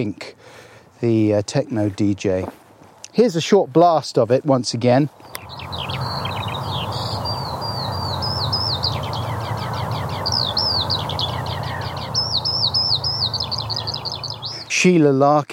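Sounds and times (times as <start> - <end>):
speech: 0.0 - 5.8, 14.8 - 15.5
low rumble of outdoor noise: 0.0 - 15.5
skylark singing: 5.1 - 14.8.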